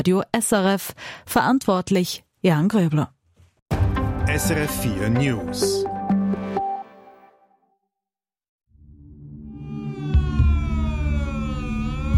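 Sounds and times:
speech: 0.0 - 3.2, 4.2 - 6.0
civil defense sirens wailing: 9.6 - 12.1.

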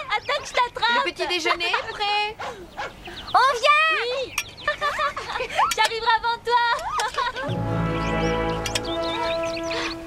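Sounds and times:
birds chirping and tweeting: 0.0 - 10.0
speech: 0.4 - 7.8.

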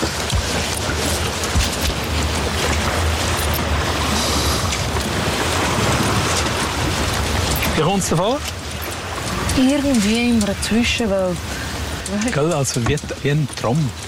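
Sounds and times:
water lapping around a boat drifting on a lake: 0.0 - 14.0
speech: 7.9 - 8.6, 9.6 - 14.0.

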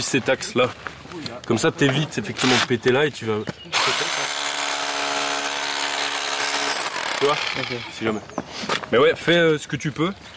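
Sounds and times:
speech: 0.0 - 4.2, 7.2 - 10.3
hammer drill drilling: 3.7 - 8.0.

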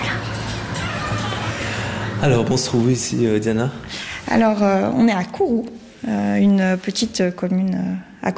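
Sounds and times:
dog whimpering and whining while greeting someone in a home in Kourou: 0.1 - 1.9
dog yipping while greeting someone in a home in Kourou: 0.6 - 1.7
speech: 2.2 - 8.3.

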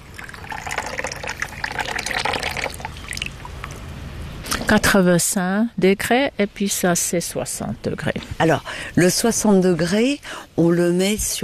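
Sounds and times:
water being poured to make matcha green tea: 0.0 - 3.8
speech: 4.7 - 11.4.

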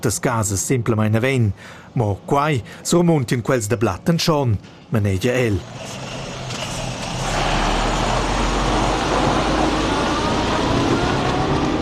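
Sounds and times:
speech: 0.0 - 6.2
heavy truck driving past: 5.6 - 11.7.

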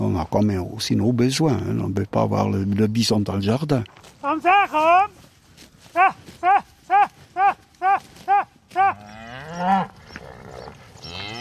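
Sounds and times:
outdoor noise: 0.0 - 11.3
speech: 0.2 - 5.2, 6.0 - 10.0
shuffling: 2.7 - 9.2
herd of cows mooing: 8.0 - 11.3.

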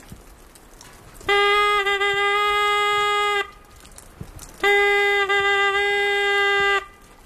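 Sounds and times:
hunting horn sounding a signal for a dead roe deer: 1.2 - 3.7, 4.6 - 7.1.

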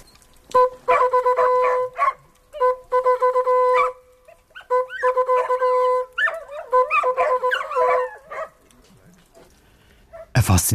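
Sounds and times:
hunting horn signal: 0.5 - 3.9, 4.6 - 8.2
speech: 10.6 - 10.7.

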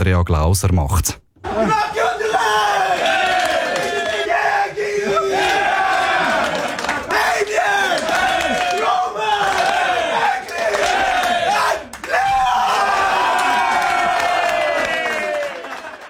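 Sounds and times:
person reading out the names of starting players: 0.0 - 1.5
speech: 0.0 - 1.8
Swiss ice hockey players shouting and roaring in a locker room: 1.4 - 15.8.

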